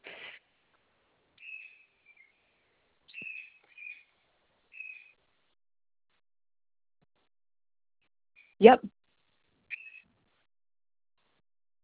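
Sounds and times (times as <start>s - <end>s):
pet bird giving short high whistled chirps: 1.4s - 5.2s, 9.7s - 10.2s
speech: 8.6s - 8.9s.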